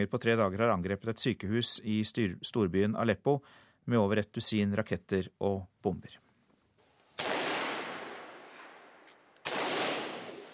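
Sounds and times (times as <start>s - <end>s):
speech: 0.0s - 6.2s
small arms gunfire bursts in a city in Syria: 7.2s - 8.8s, 9.4s - 10.5s.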